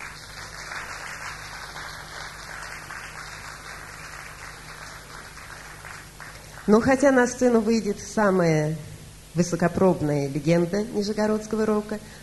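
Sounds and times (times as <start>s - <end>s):
audience applause: 0.0s - 6.8s
speech: 6.7s - 12.2s.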